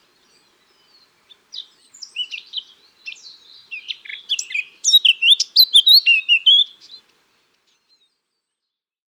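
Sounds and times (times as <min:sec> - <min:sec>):
Eurasian blackcap Sylvia atricapilla singing a varied warble: 0:00.1 - 0:07.1.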